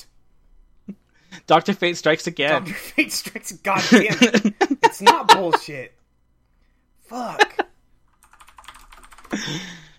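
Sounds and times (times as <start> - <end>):
speech: 1.5 - 6.0, 7.1 - 7.6, 9.4 - 9.8
laughter: 3.8 - 5.7, 7.2 - 7.7
fast typing on a computer keyboard: 8.1 - 9.5.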